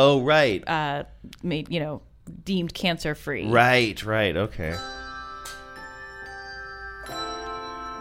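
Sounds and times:
speech: 0.0 - 5.0
handbells ringing a melody in a bell choir: 4.7 - 7.9.

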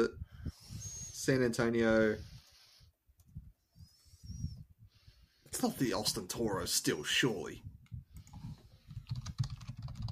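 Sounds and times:
speech: 0.0 - 0.2, 1.3 - 2.3, 5.5 - 7.7
typing on a computer keyboard: 8.2 - 10.1.

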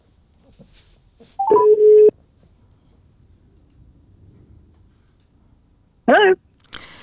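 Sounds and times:
telephone dialing tones: 1.4 - 2.1.

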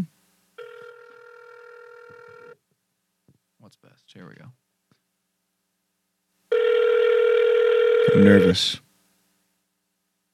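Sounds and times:
cell phone call ringing tone: 0.6 - 2.6, 6.5 - 8.7
speech: 4.0 - 4.6, 8.2 - 8.8.

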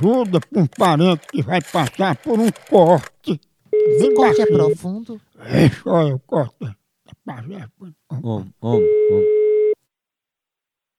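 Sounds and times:
speech: 0.0 - 9.4
telephone line tone while placing an outgoing call: 3.8 - 4.8, 8.8 - 9.8.

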